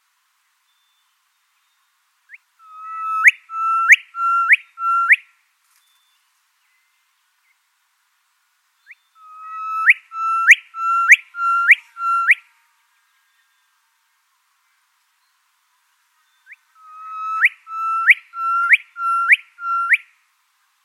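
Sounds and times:
Gilbert's Whistler erdwit calls in New South Wales, Australia: 2.3s - 5.2s, 8.8s - 12.4s, 16.3s - 20.1s.

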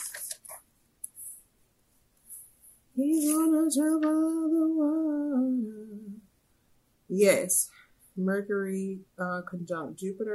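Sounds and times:
notebook pages rustling and flipping: 0.0s - 0.7s
speech: 3.0s - 5.5s, 7.1s - 10.3s.

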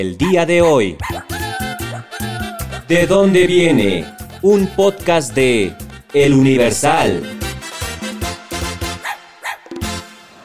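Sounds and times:
speech: 0.0s - 1.4s, 2.9s - 7.4s
dog giving higher whiny yelps: 0.2s - 2.9s, 9.0s - 9.7s
dog barking loudly: 0.6s - 2.1s, 9.0s - 9.7s.

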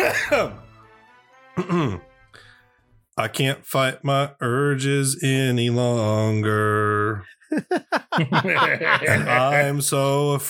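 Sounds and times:
person coughing: 0.0s - 0.5s, 1.6s - 2.0s
laughter: 0.0s - 0.6s, 7.5s - 10.1s
speech: 0.2s - 0.7s, 1.6s - 2.5s, 3.2s - 10.4s
person clearing throat: 1.6s - 2.0s.

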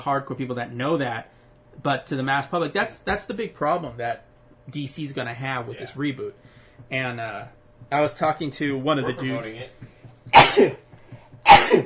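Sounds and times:
speech: 0.0s - 10.8s
faint low hum: 0.0s - 11.8s
person sneezing: 10.3s - 10.8s, 11.4s - 11.8s.

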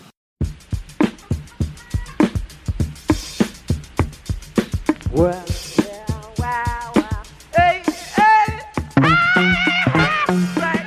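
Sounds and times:
sampled drum loop from a funk record: 0.0s - 10.8s
speech: 5.2s - 5.6s.

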